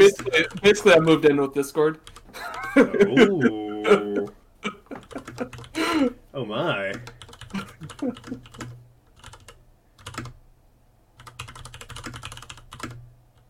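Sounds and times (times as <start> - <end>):
typing on a computer keyboard: 0.0 - 1.2, 2.0 - 2.9, 4.2 - 6.0, 6.9 - 10.4, 11.2 - 13.4
low steady hum: 0.0 - 13.4
speech: 0.1 - 4.2, 5.4 - 7.2, 7.8 - 8.7
laughter: 2.3 - 6.2, 7.5 - 8.5.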